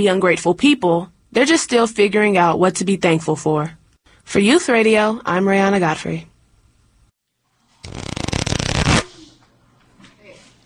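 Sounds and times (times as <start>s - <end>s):
speech: 0.0s - 6.3s, 7.8s - 8.1s
deck of playing cards riffle-shuffled: 7.8s - 9.1s.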